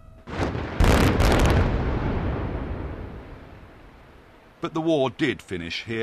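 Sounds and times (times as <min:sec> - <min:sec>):
controlled detonation in a diamond mine in Sierra Leone: 0:00.3 - 0:04.3
speech: 0:04.6 - 0:06.0.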